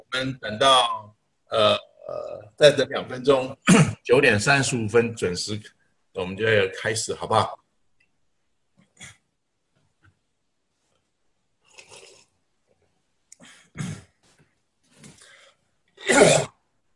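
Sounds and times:
speech: 0:00.1 - 0:01.9, 0:02.6 - 0:07.6
person coughing: 0:03.6 - 0:04.0, 0:13.4 - 0:14.1, 0:16.0 - 0:16.6
throat clearing: 0:03.6 - 0:04.0, 0:13.4 - 0:14.1, 0:16.0 - 0:16.6.

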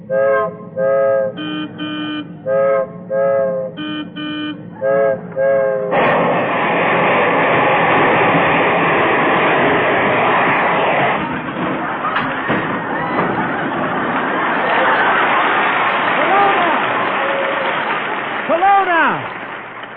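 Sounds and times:
train horn blasts at a railroad crossing: 0:00.0 - 0:06.0
train passing a railroad crossing: 0:00.0 - 0:19.9
laughter: 0:11.2 - 0:18.0.

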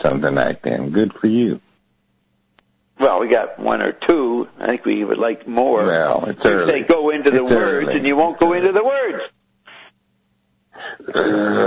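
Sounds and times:
speech: 0:00.0 - 0:01.6, 0:03.0 - 0:09.4, 0:10.8 - 0:11.6
person yawning: 0:10.8 - 0:11.6.

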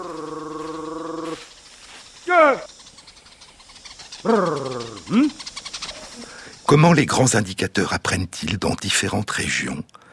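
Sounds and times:
honey hunters' buzzing trilled vocal call to honeyguide birds: 0:00.0 - 0:06.7
quiet outdoor background: 0:00.0 - 0:10.1
speech: 0:02.5 - 0:02.7, 0:04.2 - 0:05.4, 0:06.7 - 0:10.0.

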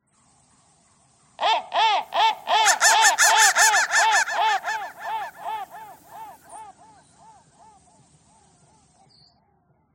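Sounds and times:
crow cawing with rough arched caws: 0:01.4 - 0:06.4.

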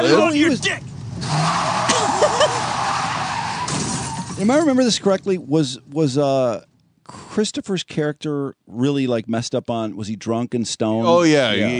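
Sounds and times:
speech: 0:00.0 - 0:01.8, 0:04.4 - 0:11.7
steady road noise of a moving car: 0:00.0 - 0:06.0
car tires squealing in a short skid: 0:01.2 - 0:04.4.

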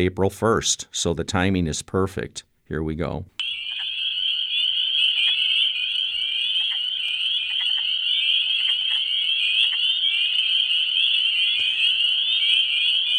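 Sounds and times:
speech: 0:00.0 - 0:03.4
spring peepers chorus at a pond after dark in Michigan: 0:03.4 - 0:13.1
soft clicks: 0:07.5 - 0:07.9.

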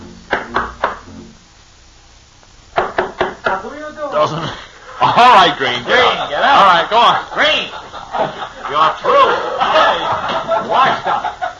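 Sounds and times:
knocking on a wooden door: 0:02.8 - 0:03.6
speech: 0:03.5 - 0:11.4
laughter: 0:04.2 - 0:11.5.

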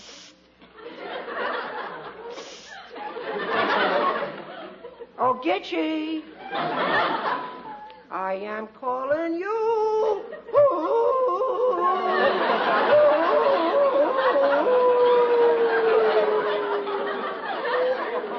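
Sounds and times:
laughter: 0:00.8 - 0:05.2, 0:06.3 - 0:08.1, 0:10.0 - 0:18.3
speech: 0:05.4 - 0:07.5, 0:08.1 - 0:11.0, 0:11.9 - 0:13.8
man howling like a wolf: 0:10.6 - 0:17.1.

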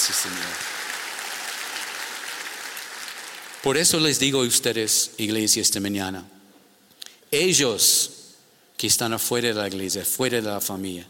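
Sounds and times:
church congregation applauding: 0:00.0 - 0:04.4
speech: 0:00.1 - 0:00.8, 0:03.6 - 0:06.4, 0:07.3 - 0:08.2, 0:08.8 - 0:11.0.

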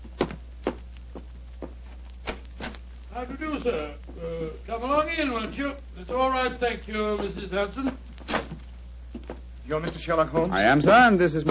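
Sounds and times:
slow heavy footsteps climbing wooden stairs: 0:00.0 - 0:02.0
faint low hum: 0:00.0 - 0:11.4
speech: 0:03.2 - 0:08.0, 0:09.7 - 0:11.4.

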